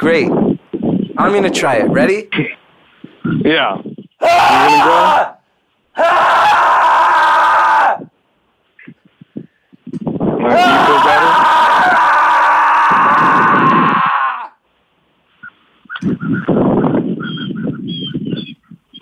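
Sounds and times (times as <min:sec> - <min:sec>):
speech: 0:00.0 - 0:00.5, 0:01.2 - 0:02.6, 0:03.2 - 0:05.4, 0:06.0 - 0:06.8, 0:10.5 - 0:11.4
person screaming loudly: 0:04.2 - 0:05.4, 0:06.0 - 0:08.1, 0:10.4 - 0:14.6
harsh squawking honk-like bird calls: 0:15.9 - 0:19.0.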